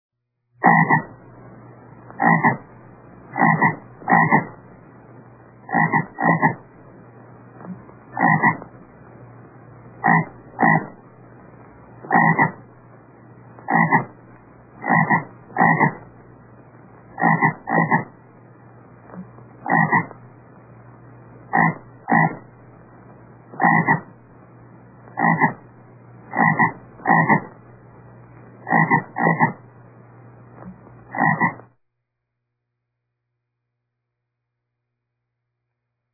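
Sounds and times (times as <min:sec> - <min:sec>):
bullfrog croaking: 0:00.6 - 0:01.3, 0:02.1 - 0:04.7, 0:05.6 - 0:06.7, 0:07.6 - 0:08.9, 0:10.0 - 0:11.1, 0:12.0 - 0:12.8, 0:13.6 - 0:16.3, 0:17.1 - 0:18.3, 0:19.0 - 0:20.3, 0:21.5 - 0:22.6, 0:23.5 - 0:24.2, 0:25.0 - 0:27.6, 0:28.6 - 0:29.7, 0:30.6 - 0:31.7.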